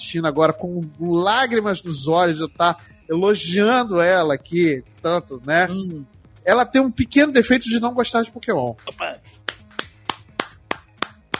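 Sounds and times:
speech: 0.1s - 9.5s
hand claps: 9.3s - 11.3s.

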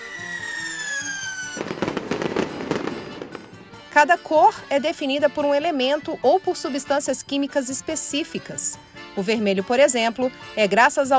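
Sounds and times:
rising whistle of a firework streaking upward: 0.0s - 1.8s
fireworks bursting into crackling pops and bangs: 0.0s - 4.0s
speech: 4.0s - 11.1s.

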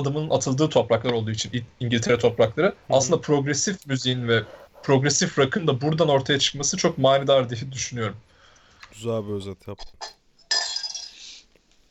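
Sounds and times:
speech: 0.0s - 8.3s, 8.9s - 10.2s
drinking glasses clinking: 10.4s - 11.2s
drinking glass crashing with ringing shards: 10.4s - 11.3s.

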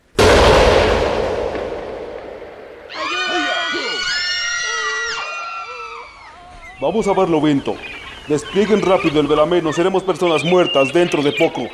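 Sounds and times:
heavy cannon shot booming: 0.0s - 3.4s
several voices shouting and crying: 2.9s - 11.7s
speech: 6.8s - 11.7s.

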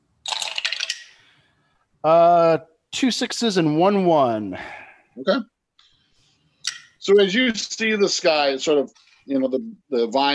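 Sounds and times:
handful of dice clattering onto a hard surface: 0.2s - 1.1s
speech: 2.0s - 5.5s, 7.0s - 10.3s.

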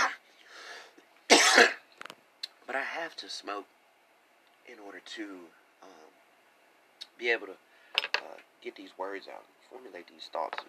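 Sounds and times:
person coughing: 1.3s - 1.8s
speech: 2.7s - 3.8s, 4.7s - 6.2s, 7.2s - 10.6s.

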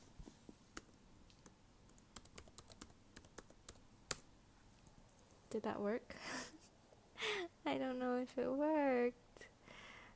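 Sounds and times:
rapid irregular computer keyboard typing: 0.8s - 4.2s
speech: 5.5s - 6.4s, 7.7s - 9.5s.

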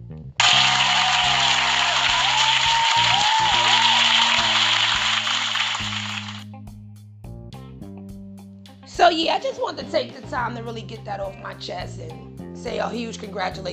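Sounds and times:
crowd applauding: 0.4s - 6.4s
speech: 9.1s - 13.7s.

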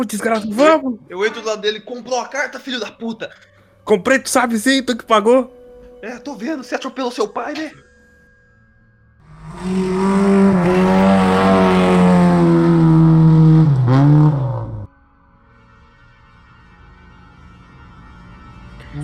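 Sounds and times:
speech: 0.0s - 7.8s, 9.6s - 10.8s
car engine started and revving: 9.2s - 14.9s.

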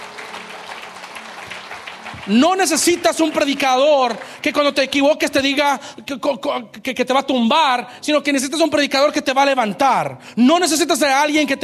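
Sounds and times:
large church audience applauding: 0.0s - 5.8s
speech: 2.2s - 11.6s.

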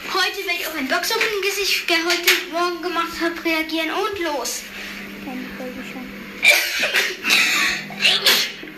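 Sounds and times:
speech: 0.3s - 5.4s
person sneezing: 6.5s - 8.6s.

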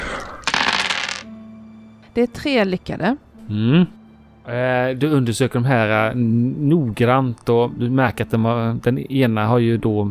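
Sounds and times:
handful of dice clattering across a hard surface: 0.2s - 1.3s
speech: 2.2s - 10.0s.

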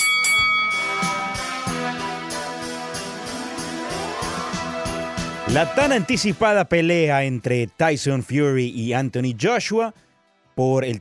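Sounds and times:
boxing ring bell ringing: 0.0s - 1.8s
steady rhythmic music with a pounding beat: 0.4s - 6.7s
speech: 5.5s - 10.0s, 10.6s - 10.9s.

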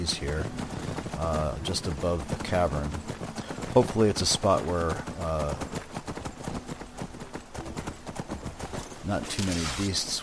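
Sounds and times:
speech: 0.0s - 5.8s, 9.1s - 10.2s
horses' hooves clip-clopping on the ground near a grove above a cavern: 0.0s - 10.2s.

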